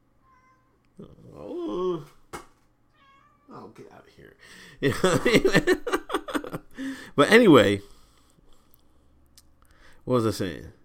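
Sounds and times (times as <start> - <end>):
cat meowing: 0.2 - 0.8, 2.9 - 3.6
speech: 1.0 - 1.6, 3.8 - 6.0, 7.2 - 7.9, 10.1 - 10.8
laughter: 4.8 - 6.8.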